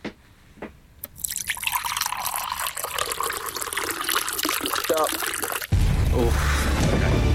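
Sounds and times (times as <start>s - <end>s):
liquid pouring from a jug into a container: 1.0s - 5.7s
soft drips: 1.0s - 5.7s
speech: 5.0s - 5.4s, 6.2s - 7.2s.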